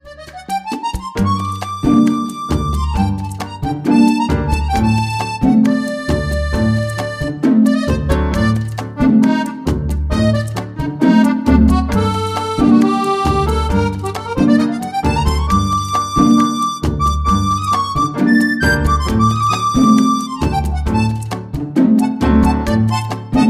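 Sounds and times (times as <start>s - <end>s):
instrumental ringtone: 0.0s - 23.4s.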